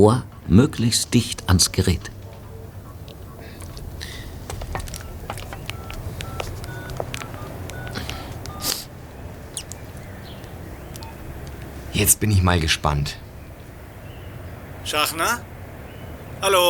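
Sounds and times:
speech: 0.0s - 2.2s, 12.0s - 13.2s, 14.9s - 15.5s, 16.4s - 16.6s
steady outdoor rumble of traffic outside a police headquarters: 0.0s - 16.6s
mobile phone keypad dialing tones outside a police headquarters: 4.5s - 8.8s, 11.0s - 11.3s.

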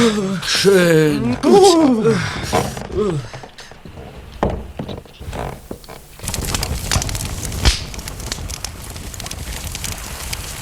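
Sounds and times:
speech: 0.0s - 3.4s
fireplace fire of wood and paper crackling: 0.0s - 10.5s
paper being crumpled: 5.0s - 10.5s.

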